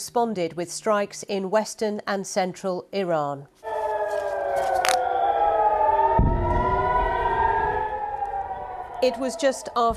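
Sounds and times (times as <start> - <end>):
speech: 0.0 - 3.6, 9.0 - 9.9
air raid sirens wailing across an open area: 3.6 - 9.9.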